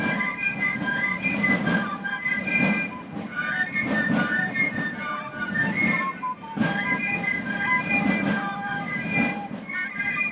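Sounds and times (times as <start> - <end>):
shrill piccolos of carnival fifers playing a bright tune in unison: 0.0 - 10.2
steady beat of snare drums of marching carnival drummers: 0.0 - 10.2.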